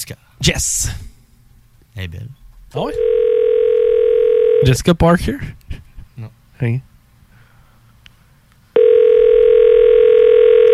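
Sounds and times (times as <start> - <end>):
speech: 0.1 - 1.1, 2.0 - 3.4, 4.6 - 6.9
telephone dial tone: 3.0 - 4.6, 8.8 - 10.7.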